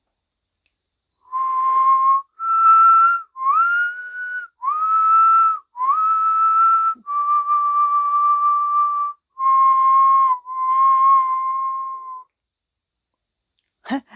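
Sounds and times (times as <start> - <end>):
slow whistled melody of long sustained notes: 1.1 - 12.3.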